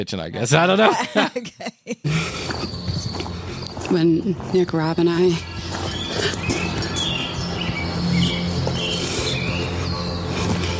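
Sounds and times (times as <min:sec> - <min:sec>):
speech: 0:00.0 - 0:06.8
laughter: 0:00.5 - 0:02.6
birds chirping at night: 0:02.1 - 0:10.7.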